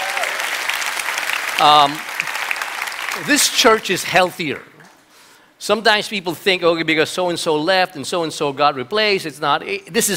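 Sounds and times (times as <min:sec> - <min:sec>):
person cheering: 0:00.0 - 0:00.4
large group applauding: 0:00.0 - 0:03.8
speech: 0:01.6 - 0:02.1, 0:03.2 - 0:04.7, 0:05.6 - 0:10.1.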